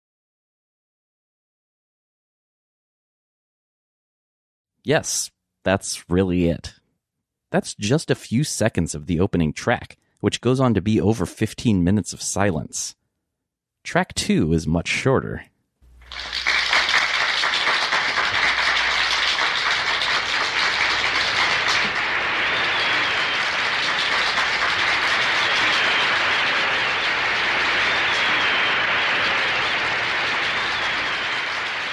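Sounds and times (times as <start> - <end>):
speech: 4.8 - 6.8, 7.5 - 13.0, 13.8 - 15.5
audience applause: 16.0 - 31.9.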